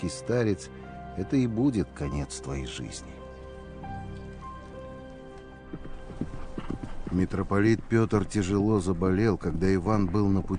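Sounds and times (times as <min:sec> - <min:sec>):
speech: 0:00.0 - 0:03.2, 0:07.2 - 0:10.5
horse hooves clattering while galloping: 0:04.0 - 0:09.6.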